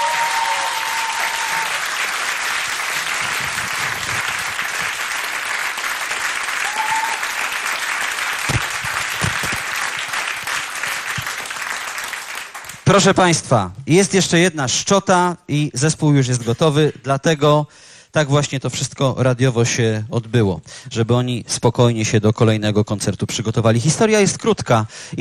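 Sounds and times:
audience applause for a rock band at a live radio concert: 0.0 - 12.9
speech: 12.9 - 25.1.

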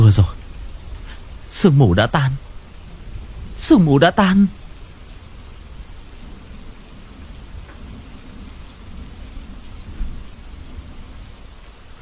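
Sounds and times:
steady rain: 0.0 - 12.0
speech: 0.1 - 0.4, 1.5 - 2.5, 3.6 - 4.6.

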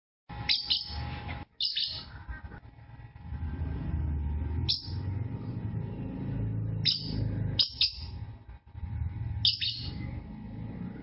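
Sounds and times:
steady low rumbling hum: 0.3 - 11.0
champion singer lovebird chirping in sharp high bursts: 0.5 - 1.0, 1.6 - 2.2, 4.6 - 5.1, 6.7 - 8.2, 9.4 - 10.2.

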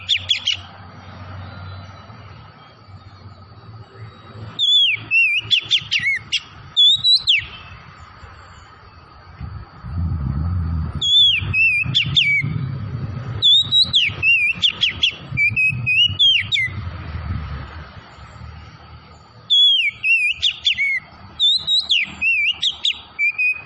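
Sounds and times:
Oriental magpie-robin singing rapid clear whistles: 0.0 - 0.7, 4.0 - 7.8, 11.0 - 12.7, 13.3 - 16.8, 19.4 - 23.6
low rumble: 9.3 - 19.4.

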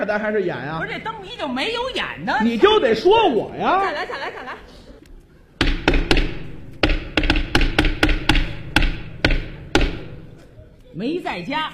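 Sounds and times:
speech: 0.0 - 4.6, 11.0 - 11.7
laughter: 2.6 - 5.6
knocking on a door during a stage comedy crosstalk routine: 5.6 - 10.3.

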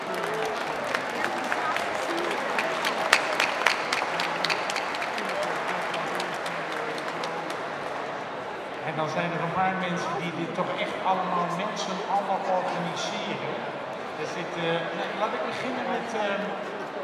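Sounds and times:
audience applause at a communal meal during an open house: 0.0 - 8.8
speech: 9.0 - 16.8.

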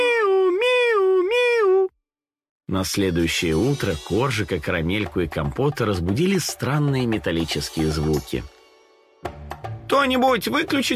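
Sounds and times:
kittens meowing happily: 0.0 - 1.9
speech: 2.7 - 8.6, 10.0 - 10.9.

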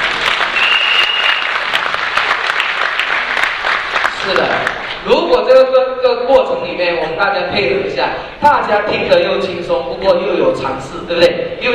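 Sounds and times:
audience applause for a young boy: 0.0 - 5.0
speech: 5.1 - 11.7.

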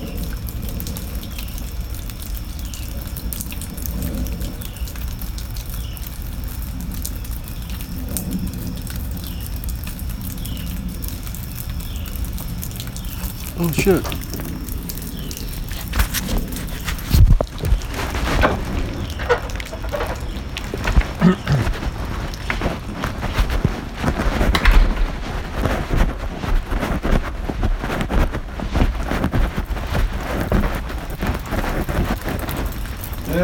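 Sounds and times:
steady rain pattering down outdoors: 0.0 - 33.4
speech: 13.6 - 14.2
footsteps moving through rain: 15.5 - 32.2.

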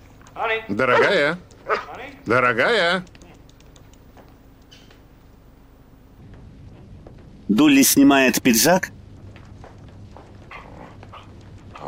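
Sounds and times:
speech: 0.4 - 3.2, 7.5 - 9.0
dog barking excitedly while jumping up on its hind legs: 0.8 - 2.1
dog giving faint short yaps and whiny yelps: 0.9 - 2.0.

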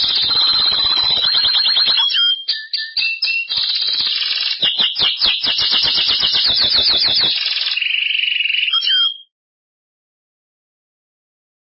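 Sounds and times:
Belgian canary singing: 0.0 - 9.3.

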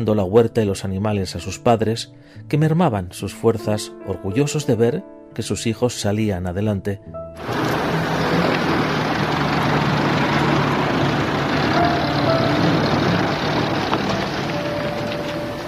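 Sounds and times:
speech: 0.0 - 7.8
car engine and road noise driving into a village after a long journey: 7.4 - 15.6.

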